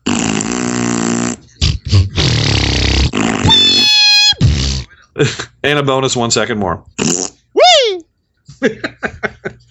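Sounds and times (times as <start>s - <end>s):
loud buzzy fart noises: 0.0s - 4.9s, 7.0s - 7.5s
speech: 5.2s - 7.2s, 8.6s - 9.4s.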